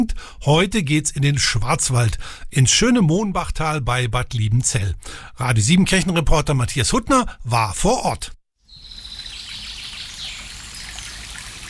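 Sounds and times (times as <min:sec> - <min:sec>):
speech: 0:00.0 - 0:08.4
babbling stream trickling and splashing: 0:08.9 - 0:11.6.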